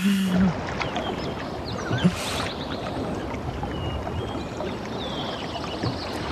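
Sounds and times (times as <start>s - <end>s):
sea water churning and hissing: 0.0s - 6.3s.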